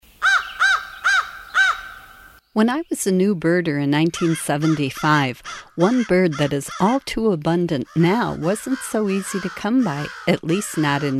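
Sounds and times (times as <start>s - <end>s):
crow cawing: 0.2s - 2.4s, 4.2s - 7.0s, 7.8s - 11.1s
speech: 2.6s - 11.1s.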